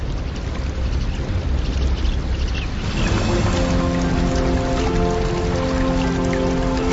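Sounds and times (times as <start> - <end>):
torrential rain: 0.0 - 6.9
sustained tonal calls possibly birds: 2.8 - 6.9.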